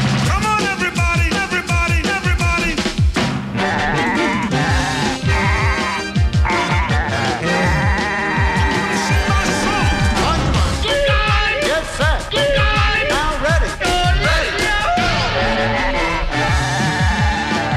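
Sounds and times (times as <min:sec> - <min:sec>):
busy continuous musical backing: 0:00.0 - 0:17.7
goats bleating: 0:03.6 - 0:17.7.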